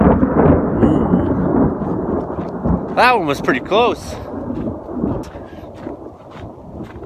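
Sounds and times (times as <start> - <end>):
faint rain or wind hiss: 0.0 - 5.1
deep sustained rumble of thunder out towards Yanks Peak: 0.0 - 7.0
speech: 3.0 - 4.6.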